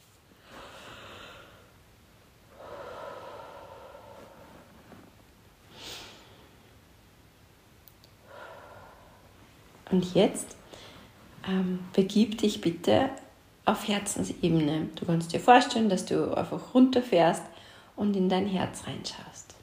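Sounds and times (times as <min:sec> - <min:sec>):
slow deep breaths in through the nose and out through the mouth: 0:00.3 - 0:01.8, 0:02.5 - 0:06.9, 0:08.2 - 0:09.7, 0:10.6 - 0:11.3
speech: 0:09.9 - 0:10.6, 0:11.5 - 0:19.5.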